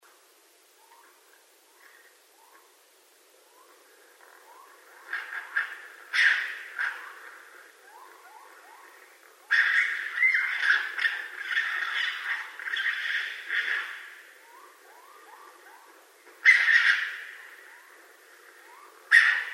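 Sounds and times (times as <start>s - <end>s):
raccoon harsh raspy screeches and shrieks: 5.1s - 7.4s, 9.5s - 14.1s, 16.4s - 17.9s, 18.8s - 19.5s.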